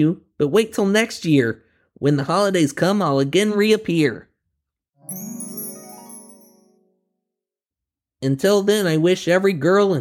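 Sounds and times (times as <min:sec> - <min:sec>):
speech: 0:00.0 - 0:04.3, 0:05.1 - 0:05.3, 0:08.2 - 0:09.9
sleigh bell ringing: 0:05.1 - 0:06.8.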